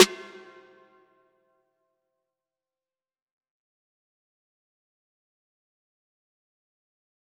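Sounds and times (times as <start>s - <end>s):
bell snare hit: 0.0s - 0.8s.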